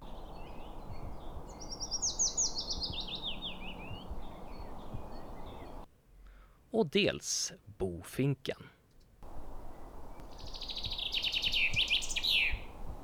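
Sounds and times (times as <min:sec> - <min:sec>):
willow warbler singing: 0:00.0 - 0:05.9, 0:09.2 - 0:12.9
steady hiss of outdoor ambience: 0:00.0 - 0:13.0
speech: 0:06.8 - 0:08.8.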